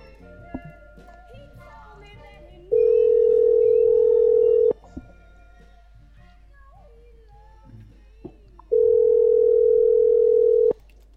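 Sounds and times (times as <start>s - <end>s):
ringback tones of an outgoing telephone call: 2.7s - 4.8s, 8.7s - 10.8s.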